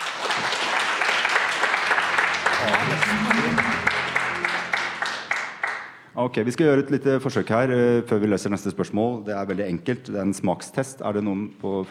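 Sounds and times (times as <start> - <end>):
audience applause: 0.0 - 6.0
speech: 6.2 - 11.8.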